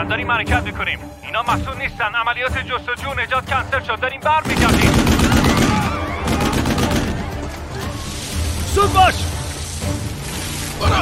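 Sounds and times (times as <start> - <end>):
speech: 0.1 - 5.8, 8.8 - 9.3, 10.8 - 11.0
rapid gunfire volley: 4.4 - 7.5.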